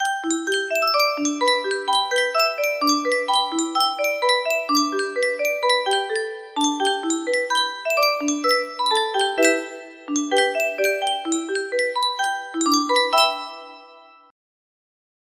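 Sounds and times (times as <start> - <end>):
Yunsheng music box playing a tune: 0.0 - 14.3.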